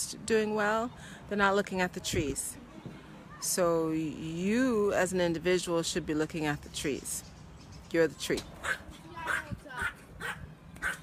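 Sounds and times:
speech: 0.1s - 2.6s, 3.4s - 7.3s, 7.9s - 9.6s
female Yorkshire terrier barking outside: 8.6s - 11.0s.

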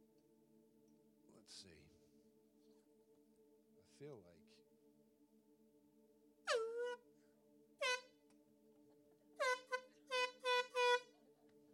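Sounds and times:
speech: 1.4s - 2.0s, 4.0s - 4.7s
loud blaring foghorn-style blasts and honks: 7.8s - 8.1s, 9.4s - 11.1s.

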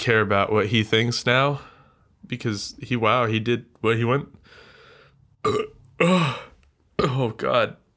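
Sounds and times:
speech: 0.0s - 4.6s, 5.4s - 7.8s
loud burps: 5.4s - 7.3s.

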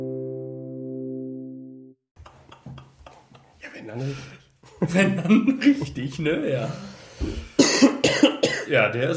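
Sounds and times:
laughter: 2.3s - 6.9s
speech: 3.9s - 7.4s, 8.7s - 9.1s
faint low intake of breath: 6.6s - 7.6s
harsh coughs: 7.4s - 8.7s.

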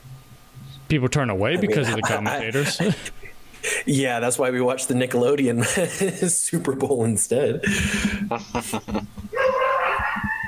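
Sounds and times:
speech: 0.9s - 9.3s
laughter: 1.5s - 3.3s, 5.6s - 6.4s, 7.6s - 9.6s
dogs barking in sharp yips while playing: 9.3s - 10.4s.

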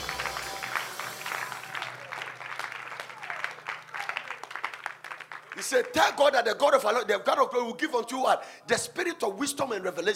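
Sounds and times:
congregation applauding: 0.0s - 6.2s
speech: 5.6s - 10.1s.

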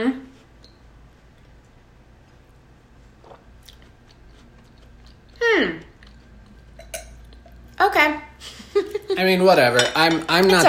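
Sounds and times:
brittle cookie being bitten and chewed: 3.2s - 7.6s
laughter: 8.4s - 9.2s
speech: 9.2s - 10.6s.

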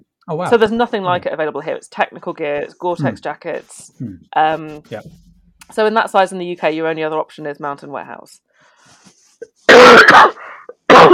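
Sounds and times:
speech: 0.3s - 9.0s, 9.7s - 10.5s
person coughing harshly: 9.4s - 11.1s.

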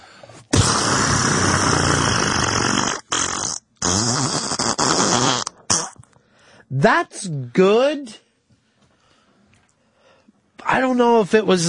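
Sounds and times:
person blowing a raspberry mimicking a fart: 0.4s - 6.2s
speech: 6.8s - 8.2s, 10.7s - 11.6s.

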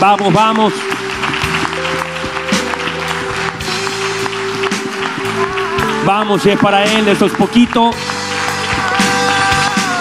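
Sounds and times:
speech: 0.0s - 1.2s, 6.0s - 8.1s
crowd clapping after a prayer: 0.0s - 9.9s
sustained keyboard or organ chords: 0.0s - 9.9s.

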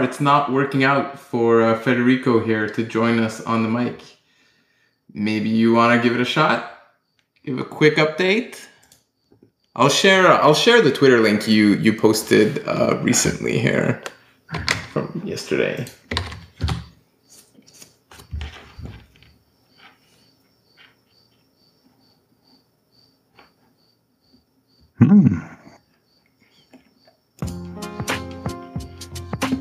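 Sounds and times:
speech: 0.0s - 4.2s, 5.1s - 6.7s, 7.4s - 8.7s, 9.8s - 16.7s, 25.0s - 25.5s
crickets chirping: 0.0s - 29.5s
person murmuring: 25.0s - 25.8s
music: 27.4s - 29.5s.

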